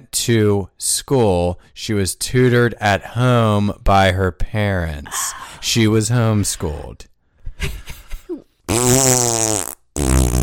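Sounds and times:
speech: 0:00.1 - 0:08.0, 0:08.7 - 0:09.7
buzzy fart noises blown with the mouth: 0:08.7 - 0:10.4.

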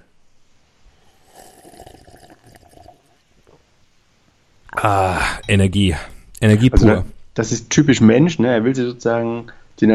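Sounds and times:
water sloshing and swirling in a glass: 0:01.1 - 0:03.2
speech: 0:04.8 - 0:09.9.

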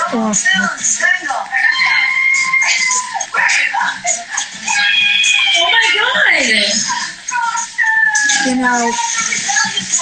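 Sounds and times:
speech: 0:00.1 - 0:07.5, 0:08.3 - 0:09.8
women screaming and shrieking: 0:01.6 - 0:03.3, 0:04.7 - 0:06.7.

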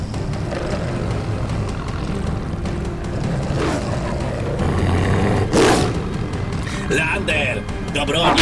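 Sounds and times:
deep werewolf beast roaring: 0:00.2 - 0:06.2
speech: 0:06.9 - 0:08.3.

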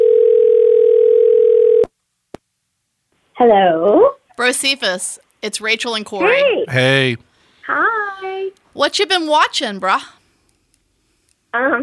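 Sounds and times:
telephone dial tone of an outgoing call: 0:00.0 - 0:01.9
speech: 0:03.4 - 0:07.9, 0:08.8 - 0:10.2, 0:11.6 - 0:11.8.

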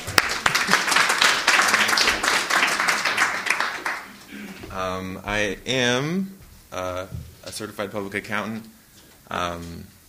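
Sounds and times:
room full of people clapping: 0:00.0 - 0:04.7
speech: 0:05.0 - 0:10.0.

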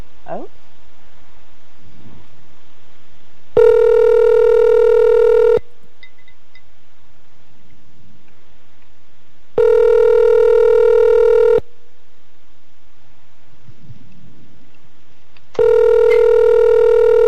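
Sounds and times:
speech: 0:00.3 - 0:00.6
buzzy phone call ringback tone: 0:03.6 - 0:05.6, 0:09.6 - 0:11.6, 0:15.6 - 0:17.2.

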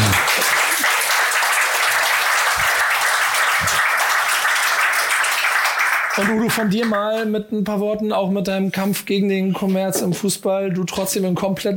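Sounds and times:
large audience applauding: 0:00.0 - 0:06.4
speech: 0:06.2 - 0:11.7.

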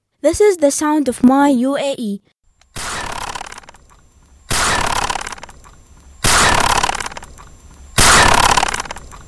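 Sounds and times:
speech: 0:00.2 - 0:02.3
gunshots fired into the sky: 0:02.7 - 0:03.8, 0:04.5 - 0:05.5, 0:06.2 - 0:07.3, 0:08.0 - 0:09.1.

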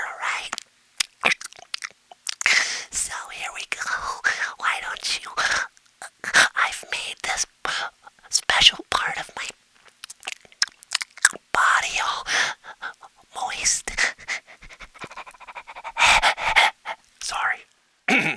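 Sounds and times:
ASMR whispering: 0:00.0 - 0:00.6, 0:02.6 - 0:09.6, 0:11.5 - 0:17.7
soft wet mouth clicks: 0:00.3 - 0:17.8.

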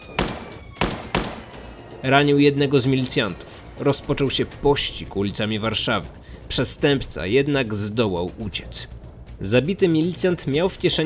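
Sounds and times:
gunshots: 0:00.0 - 0:01.8
speech: 0:02.0 - 0:11.0.

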